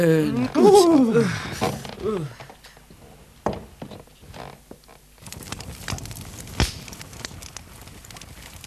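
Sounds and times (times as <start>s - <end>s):
speech: 0.0s - 2.4s
fireplace fire crackling and popping as it is lit: 3.8s - 8.6s.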